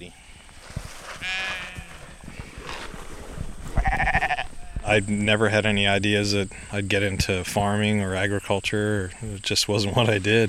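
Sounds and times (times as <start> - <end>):
soft outdoor rustling and shuffling: 0.0 - 8.0
sheep bleating: 1.2 - 2.2, 3.7 - 5.0
speech: 4.9 - 10.4.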